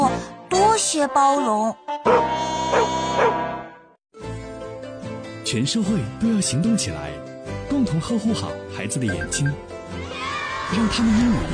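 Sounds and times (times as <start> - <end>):
speech: 0.8 - 3.4, 5.5 - 9.8, 10.7 - 11.5
guide dog giving a whiny bark with sharper yelps: 2.1 - 3.4.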